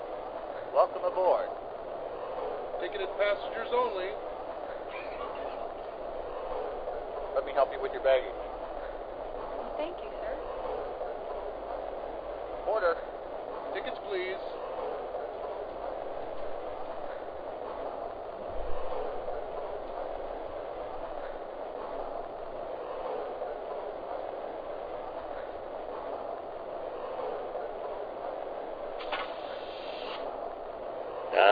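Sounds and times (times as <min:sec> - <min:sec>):
passenger train pulling out and rumbling: 0:00.0 - 0:31.5
speech: 0:00.8 - 0:01.6, 0:02.8 - 0:04.3, 0:07.4 - 0:08.4, 0:09.8 - 0:10.2, 0:12.7 - 0:12.9, 0:13.8 - 0:14.6.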